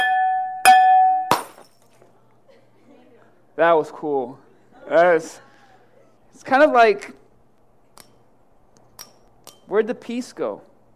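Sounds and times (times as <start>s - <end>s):
hammer striking glass: 0.0s - 1.8s
glass ringing with a bright tone: 0.0s - 1.9s
glass crunching clatter: 0.8s - 2.0s
speech: 3.6s - 5.5s, 6.3s - 7.2s, 9.7s - 10.7s.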